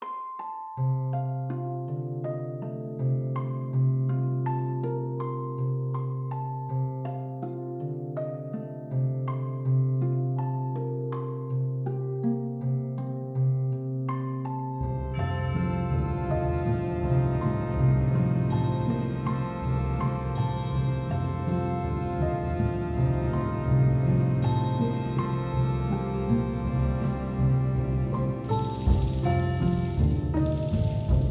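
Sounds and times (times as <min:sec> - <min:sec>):
harp playing interludes: 0:00.0 - 0:31.2
violin playing interludes: 0:14.8 - 0:31.2.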